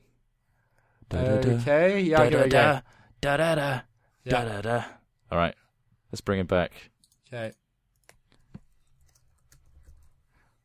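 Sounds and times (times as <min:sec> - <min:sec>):
speech: 0:01.1 - 0:07.6
typing on a computer keyboard: 0:08.0 - 0:10.1.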